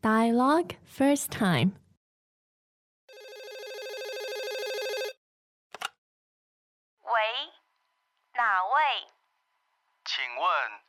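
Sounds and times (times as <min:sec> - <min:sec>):
speech: 0:00.0 - 0:01.8, 0:08.4 - 0:09.1, 0:10.2 - 0:10.8
telephone ringing electronically: 0:03.1 - 0:05.2.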